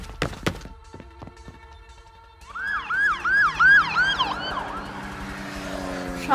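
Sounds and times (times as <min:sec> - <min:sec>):
low traffic rumble: 0:00.0 - 0:06.3
police car siren wailing: 0:02.4 - 0:06.3.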